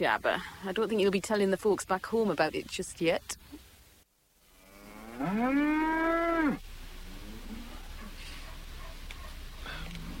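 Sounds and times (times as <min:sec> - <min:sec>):
speech: 0:00.0 - 0:03.6, 0:05.2 - 0:06.7
cow mooing in winter housing: 0:04.6 - 0:07.8.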